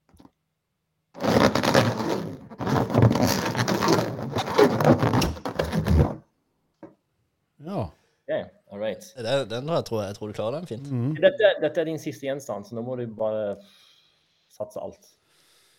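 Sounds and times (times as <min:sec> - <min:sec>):
balloon being handled, rubbing and crackling: 0:01.2 - 0:06.2
speech: 0:09.0 - 0:13.9, 0:14.5 - 0:15.2.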